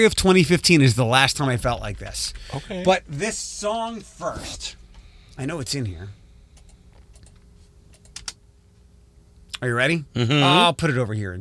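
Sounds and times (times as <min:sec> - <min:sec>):
speech: 0:00.0 - 0:04.8, 0:05.4 - 0:06.2, 0:09.6 - 0:11.3
low hum: 0:00.0 - 0:11.3
light keystrokes on a computer keyboard: 0:06.6 - 0:08.4.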